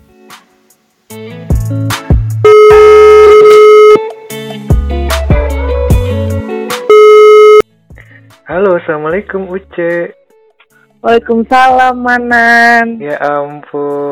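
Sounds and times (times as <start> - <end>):
speech: 1.7 - 2.0, 8.6 - 10.2, 11.0 - 14.1
short beat-driven musical backing: 2.4 - 7.6
telephone ringing tone while a call is placed: 2.5 - 4.1, 6.9 - 7.6.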